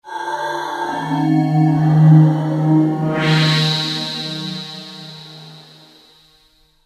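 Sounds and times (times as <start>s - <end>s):
intruder sound effect from D-50: 1.0s - 5.9s.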